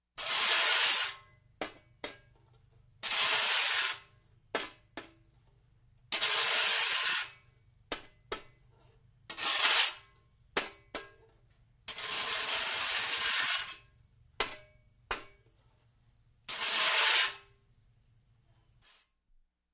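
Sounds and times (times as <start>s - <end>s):
shoveling dirt on concrete: 0.2s - 2.3s, 3.0s - 5.0s, 6.1s - 11.2s, 11.9s - 13.8s, 16.5s - 17.5s.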